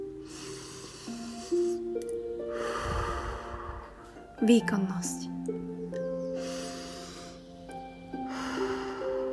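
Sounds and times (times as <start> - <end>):
deep inhaled breaths during a morning meditation: 0.2 - 4.1, 6.2 - 9.3
speech: 4.4 - 5.3.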